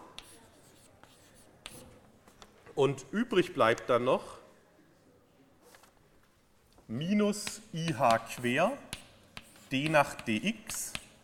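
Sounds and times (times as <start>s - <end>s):
writing strokes on a board during a physics lecture: 0.0s - 2.4s, 7.2s - 11.2s
speech: 2.8s - 4.4s, 6.9s - 9.0s, 9.7s - 11.0s.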